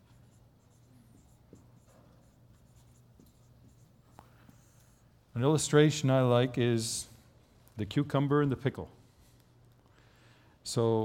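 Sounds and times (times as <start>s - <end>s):
word being written by hand on a board: 0.0s - 5.1s
speech: 5.4s - 7.1s, 7.8s - 9.0s, 10.7s - 11.0s.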